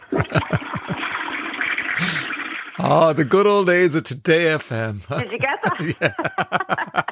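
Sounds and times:
laughter: 0.0 - 1.1, 5.1 - 7.0
toilet flushing: 0.0 - 3.6
speech: 2.8 - 7.0.

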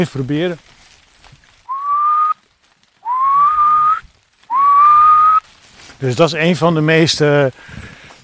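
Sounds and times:
speech: 0.0 - 0.7, 6.0 - 8.0
whistled imitation of a male little owl territorial call: 1.7 - 2.4, 3.0 - 5.4.

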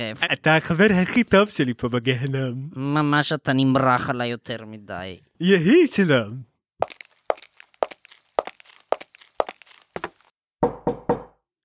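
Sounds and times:
speech: 0.0 - 7.0
knocking on a piece of wood: 10.6 - 11.4.

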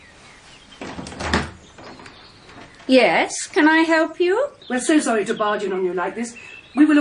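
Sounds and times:
glass-paned French windows being pushed open: 0.7 - 4.2
French window clunk: 0.8 - 3.3
speech: 2.9 - 6.9.

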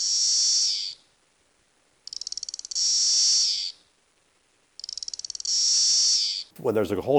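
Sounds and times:
17-year cicada Magicicada cassini click-buzz call: 0.0 - 1.0, 2.1 - 3.8, 4.8 - 6.5
speech: 6.6 - 7.1.

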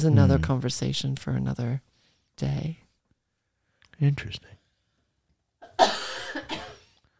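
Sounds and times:
speech: 0.0 - 2.8, 4.0 - 4.6
person coughing: 5.6 - 7.0.

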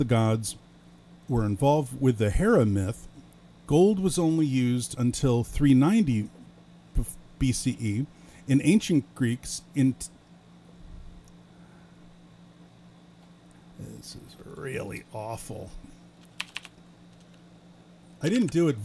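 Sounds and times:
speech: 0.0 - 0.6, 1.3 - 3.1, 3.7 - 6.4, 7.0 - 10.2, 13.8 - 16.0, 18.2 - 18.8
fast typing on a computer keyboard: 16.2 - 17.4.

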